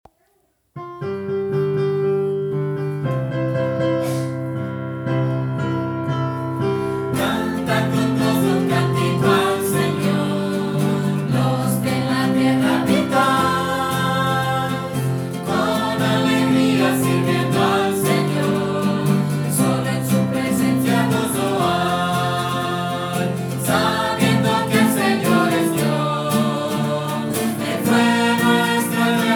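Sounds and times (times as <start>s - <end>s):
guitar: 0.8s - 29.3s
piano: 0.8s - 29.3s.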